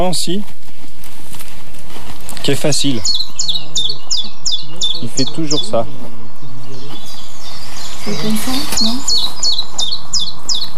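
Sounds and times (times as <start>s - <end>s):
speech: 0.0s - 0.6s, 2.4s - 3.6s, 4.7s - 6.8s, 8.0s - 9.4s
chiffchaff singing chip-chap song: 2.3s - 10.7s.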